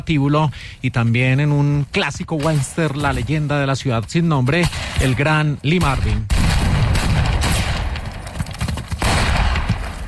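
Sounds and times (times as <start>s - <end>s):
speech: 0.0s - 6.4s
explosive booms in a war film battle: 5.8s - 8.3s, 9.0s - 9.9s
gunfire in a war film battle: 5.8s - 10.0s.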